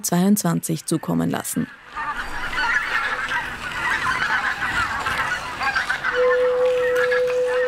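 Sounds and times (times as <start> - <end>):
speech: 0.0 - 2.1
dense honking goose-like bird calls: 1.6 - 7.6
steady pure ceramic flute tone: 6.1 - 7.6.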